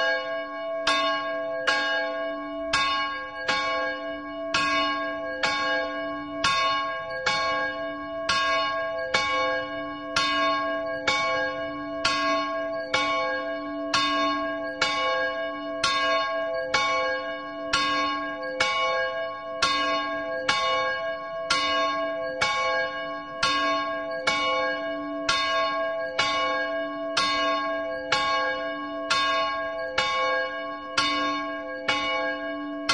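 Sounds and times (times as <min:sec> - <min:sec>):
173 kg church bell tolling at noon: 0:00.0 - 0:32.9.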